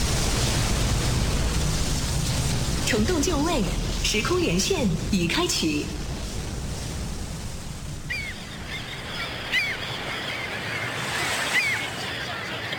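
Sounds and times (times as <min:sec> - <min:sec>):
sea waves and surf at a naval harbor: 0:00.0 - 0:12.7
speech: 0:02.9 - 0:06.0
bird-like calls: 0:08.0 - 0:12.7.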